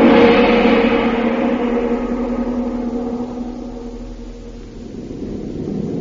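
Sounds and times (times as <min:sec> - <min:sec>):
airplane engine drone inside bomb bay of stolen enemy plane: 0:00.0 - 0:05.9.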